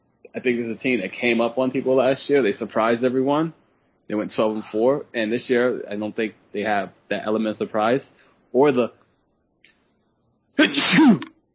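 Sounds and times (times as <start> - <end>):
speech: 0.4 - 9.0, 10.6 - 11.3
person sneezing: 10.6 - 11.4.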